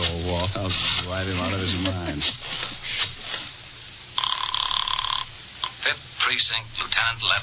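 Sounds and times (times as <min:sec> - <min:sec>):
speech: 0:00.3 - 0:02.7, 0:05.8 - 0:07.4
telephone with rapid trilling ring: 0:04.2 - 0:05.8.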